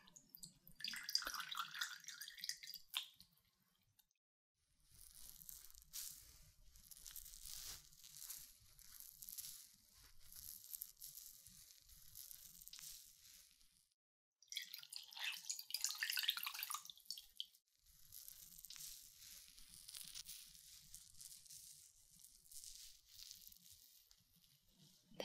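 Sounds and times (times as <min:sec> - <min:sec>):
warm water for cleaning ears dripping and trickling: 0:00.0 - 0:04.1, 0:14.4 - 0:17.6
crackly wet sounds: 0:00.0 - 0:04.2, 0:04.9 - 0:25.1.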